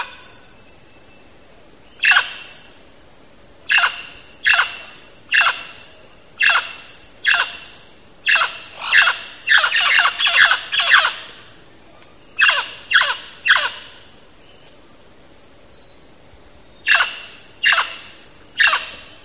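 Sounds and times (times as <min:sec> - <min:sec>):
mealy parrot squawking in Belize: 0:03.7 - 0:05.6, 0:06.4 - 0:07.6, 0:08.3 - 0:11.3, 0:12.4 - 0:13.9, 0:16.9 - 0:18.0.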